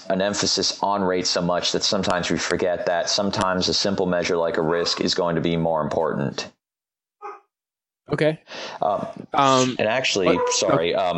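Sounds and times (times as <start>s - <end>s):
speech: 0.0s - 6.6s, 8.1s - 11.1s
dog bark: 7.2s - 7.5s, 10.2s - 11.1s.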